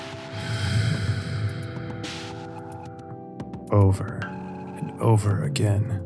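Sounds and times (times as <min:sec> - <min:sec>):
deep breathing in and out: 0:00.0 - 0:02.9
speech: 0:03.7 - 0:04.3, 0:05.0 - 0:06.0.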